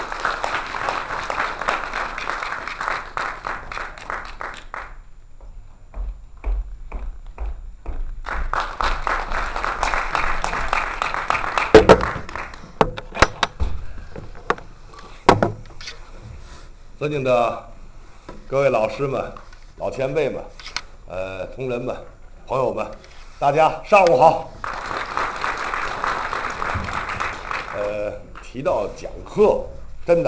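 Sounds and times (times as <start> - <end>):
audience applause welcoming a lecturer: 0.0 - 5.0, 8.3 - 12.8, 24.4 - 28.9
thumps: 11.7 - 15.8
speech: 17.0 - 17.7, 18.5 - 24.5, 28.5 - 30.2.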